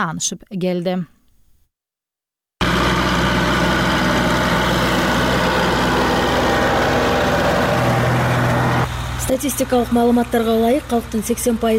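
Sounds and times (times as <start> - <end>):
speech: 0.0 - 1.2, 9.3 - 11.7
engine of a homemade bean harvesting machine droning: 2.6 - 11.7.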